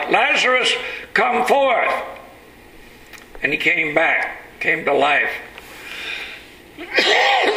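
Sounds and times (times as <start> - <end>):
speech: 0.1 - 2.2, 3.4 - 5.5
harsh raspy wheezy cough: 6.8 - 7.5.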